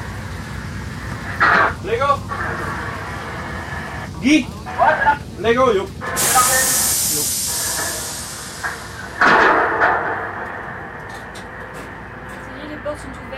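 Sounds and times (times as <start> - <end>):
steady rumbling: 0.0 - 13.3
faint voices murmuring: 1.2 - 9.2
speech: 4.2 - 6.3
doors opening with a loud pneumatic hiss: 6.2 - 9.2.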